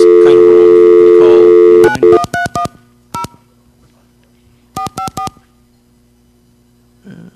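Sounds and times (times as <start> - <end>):
faint hum: 0.0 - 7.3
touch-tone telephone keypad dialing a phone number: 1.8 - 3.4, 4.8 - 5.4.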